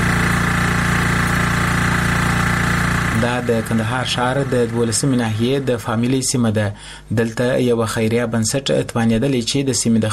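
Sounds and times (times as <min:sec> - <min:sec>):
generator engine running in Kandahar city pumping clean water: 0:00.0 - 0:06.4
speech: 0:03.2 - 0:10.1.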